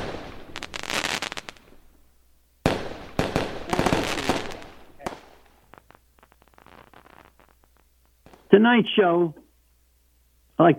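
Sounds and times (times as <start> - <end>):
fireworks exploding: 0.0 - 9.8
speech: 8.6 - 9.4, 10.6 - 10.7.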